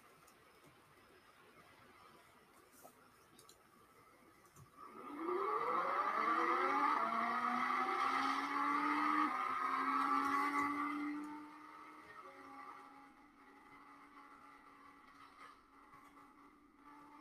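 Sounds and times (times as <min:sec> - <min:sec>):
car engine accelerating in a racing video game: 0:04.6 - 0:17.2.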